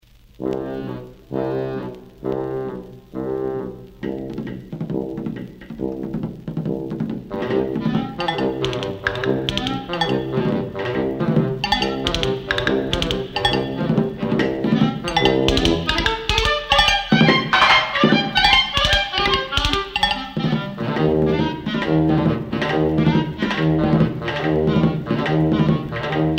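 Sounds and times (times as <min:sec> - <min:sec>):
samba music: 0:00.6 - 0:26.3.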